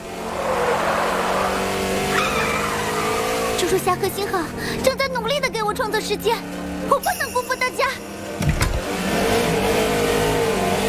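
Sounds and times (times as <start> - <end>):
car engine accelerating during a race: 0.0 - 3.9, 8.8 - 10.8
speech: 3.7 - 8.6.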